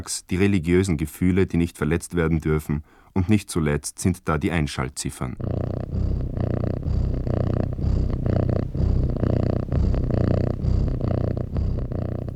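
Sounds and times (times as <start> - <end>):
speech: 0.0 - 7.0
cat purring: 5.3 - 12.3.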